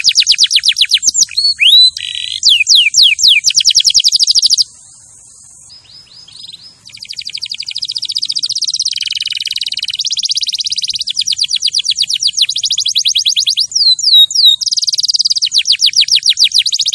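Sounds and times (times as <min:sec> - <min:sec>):
champion canary song of fast high trills and sweeping notes: 0:00.0 - 0:16.9.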